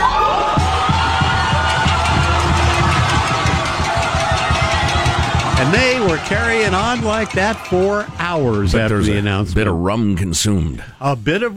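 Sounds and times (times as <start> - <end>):
large outdoor crowd cheering and celebrating: 0.0 - 10.0
rhythmic thumping: 0.5 - 10.7
speech: 6.1 - 11.5.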